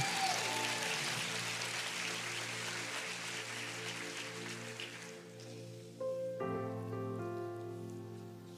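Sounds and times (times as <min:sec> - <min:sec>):
audience applause: 0:00.0 - 0:05.5
sustained keyboard chords: 0:01.6 - 0:08.5.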